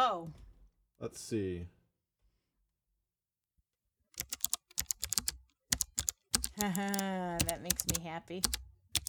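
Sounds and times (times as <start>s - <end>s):
speech: 1.0s - 1.8s, 6.6s - 8.6s
typing with both hands on a mechanical keyboard: 4.2s - 9.0s.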